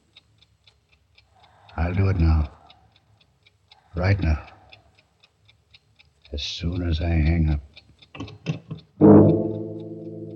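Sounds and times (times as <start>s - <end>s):
clock ticking: 0.0s - 10.3s
speech: 1.9s - 2.6s, 4.0s - 4.5s, 6.3s - 8.5s
clock striking with a rich bell tone: 9.0s - 10.3s.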